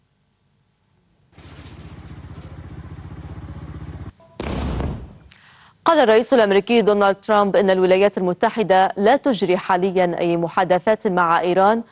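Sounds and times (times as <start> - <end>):
steady rapidly pulsing rumble: 1.4 - 4.2
loud explosion from an airstrike in southern Lebanon: 1.4 - 5.3
speech: 5.9 - 11.9.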